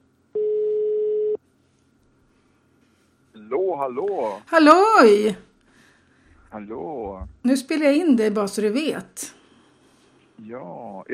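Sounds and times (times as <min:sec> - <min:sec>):
telephone ringback tone of an outgoing call: 0:00.4 - 0:01.4
speech: 0:03.8 - 0:05.4, 0:06.5 - 0:09.4, 0:10.4 - 0:11.1.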